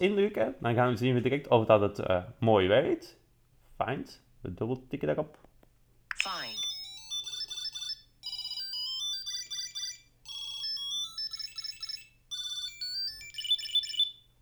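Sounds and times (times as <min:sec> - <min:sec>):
speech: 0:00.0 - 0:03.2, 0:03.8 - 0:05.4, 0:06.2 - 0:06.6
Tile Bluetooth tracker ringing with a high bright electronic melody: 0:06.2 - 0:14.1.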